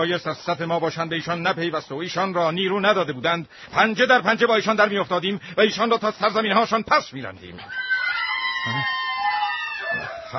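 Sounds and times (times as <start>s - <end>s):
speech: 0.0s - 7.8s, 8.6s - 9.0s
women's voices wailing: 7.7s - 10.3s.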